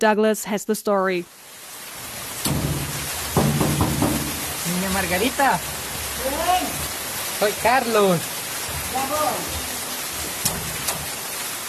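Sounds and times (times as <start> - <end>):
speech: 0.0 - 1.5, 5.0 - 6.7, 7.4 - 8.3, 8.9 - 9.6
rain of big drops on corrugated iron roofs of huts and houses in Guarchia, El Salvador: 1.0 - 11.6
sharp raindrops striking metal roofs: 2.4 - 4.5.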